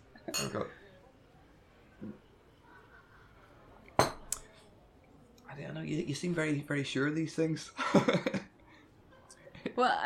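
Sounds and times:
faint murmur: 0:00.0 - 0:10.0
glasses clinking in a toast: 0:00.2 - 0:00.7
speech: 0:00.6 - 0:00.8, 0:05.8 - 0:08.4, 0:09.8 - 0:10.0.

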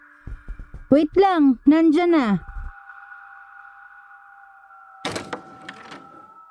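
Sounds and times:
high electronic hum: 0:00.0 - 0:03.0
speech: 0:00.9 - 0:02.5
apartment door being unlocked with rattle and latch clicks: 0:05.0 - 0:06.1
apartment door creaking open: 0:05.0 - 0:06.4.

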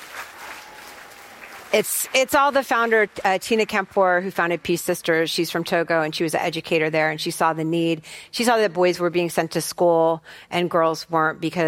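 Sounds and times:
audience applauding: 0:00.0 - 0:02.2
speech: 0:01.7 - 0:11.6.

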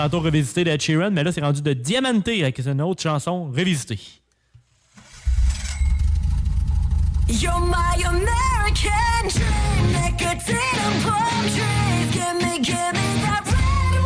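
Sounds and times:
speech: 0:00.0 - 0:04.2, 0:07.3 - 0:13.0
engine starting and rumbling: 0:04.9 - 0:10.3.

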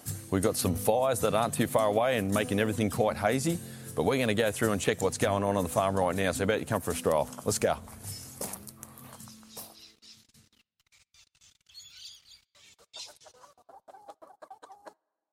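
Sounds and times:
speech: 0:00.3 - 0:08.1
layer chickens clucking and squawking in a poultry run on a farm during a drought: 0:11.4 - 0:15.3.

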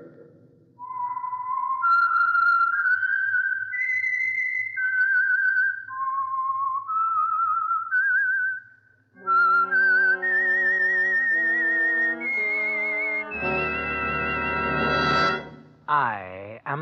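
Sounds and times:
solitary whistled melody: 0:00.8 - 0:15.5
orchestral swell with sustained brass-like chords: 0:09.6 - 0:15.6.

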